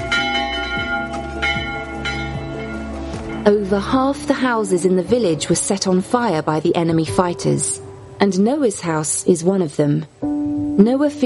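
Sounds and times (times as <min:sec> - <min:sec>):
church bells ringing: 0:00.0 - 0:05.0
speech: 0:03.4 - 0:11.2.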